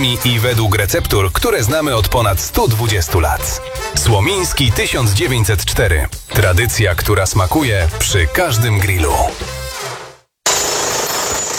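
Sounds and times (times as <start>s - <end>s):
speech: 0.0s - 9.5s
jackhammer pounding: 9.9s - 11.5s.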